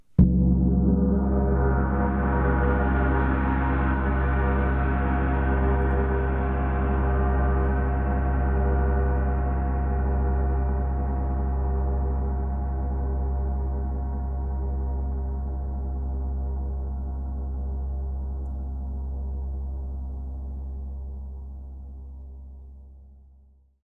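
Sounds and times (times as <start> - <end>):
percussion: 0.0 - 20.6
huge gong: 0.2 - 20.4.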